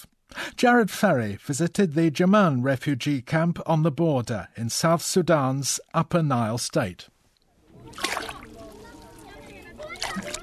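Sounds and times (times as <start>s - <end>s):
speech: 0.6s - 7.1s
faint voices murmuring: 7.6s - 10.4s
water scooped from pits into containers in a dried-up watering hole: 7.6s - 10.4s.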